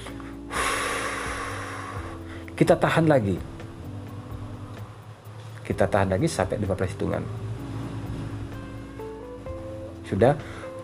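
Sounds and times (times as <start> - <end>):
forceful exhale through the mouth after holding breath in a breathing exercise: 0.2 - 2.5
speech: 2.6 - 3.5, 5.7 - 7.4, 10.1 - 10.6.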